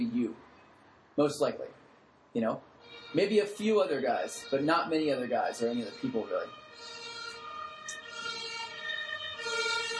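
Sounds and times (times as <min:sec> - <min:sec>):
speech: 0:01.2 - 0:06.9
ambulance siren wailing outside: 0:02.8 - 0:09.9.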